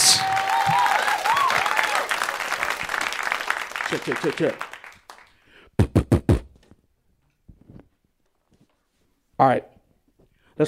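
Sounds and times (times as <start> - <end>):
live audience whistles and cheers: 0.0 - 2.6
live audience applauding: 0.0 - 5.4
speech: 3.9 - 4.7, 9.4 - 9.7.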